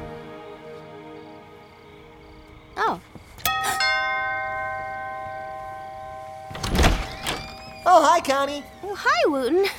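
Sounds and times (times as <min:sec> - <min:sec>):
brief voices: 0:00.3 - 0:03.3, 0:07.3 - 0:09.7
doorbell chiming a two-note ding-dong: 0:03.5 - 0:07.9.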